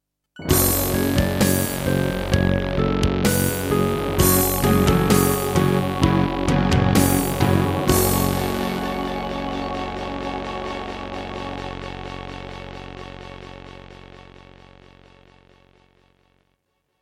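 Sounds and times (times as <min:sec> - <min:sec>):
computer game music on an IBM Aptiva SW1C: 0:00.4 - 0:11.5.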